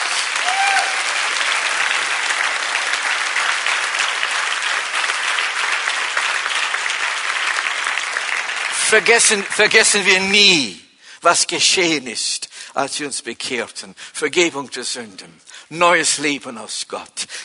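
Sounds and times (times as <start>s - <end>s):
congregation applauding: 0.0s - 10.6s
speech: 8.9s - 17.4s.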